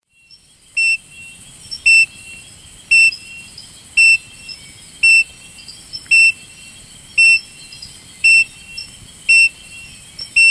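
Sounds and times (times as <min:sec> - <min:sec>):
Platypelis pollicaris calling: 0:00.7 - 0:10.4.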